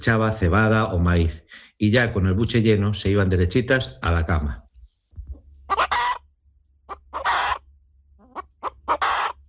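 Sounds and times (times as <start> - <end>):
speech: 0.0 - 4.6
hens clucking at the henhouse door: 5.3 - 9.4.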